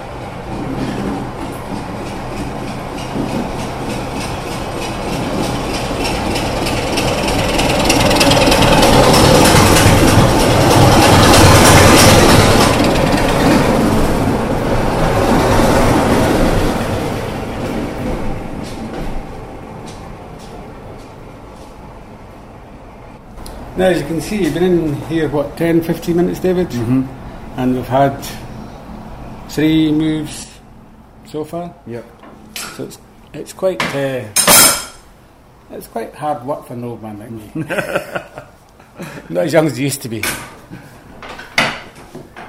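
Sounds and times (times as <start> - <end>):
two light-engine locomotives rumbling out of the railway yard: 0.0 - 19.8
locomotive wheels clattering over rail joints: 0.3 - 19.1
speech: 23.8 - 28.4, 29.6 - 30.4, 31.3 - 32.2, 32.8 - 34.4, 35.7 - 40.9
laughter: 37.6 - 39.2.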